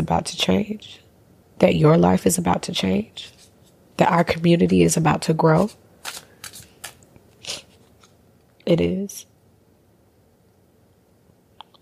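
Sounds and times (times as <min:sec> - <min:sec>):
speech: 0:00.0 - 0:01.0, 0:01.6 - 0:03.4, 0:04.0 - 0:06.2, 0:08.7 - 0:09.3
tarot cards being shuffled: 0:05.4 - 0:08.2.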